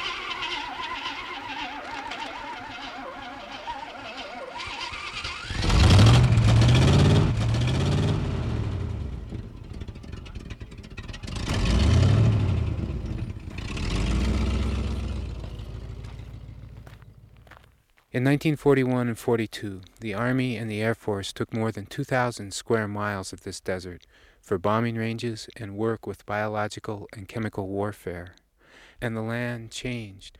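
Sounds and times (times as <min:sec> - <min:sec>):
truck engine cranking, starting and revving: 0:00.0 - 0:17.6
speech: 0:18.2 - 0:28.4, 0:29.0 - 0:30.3.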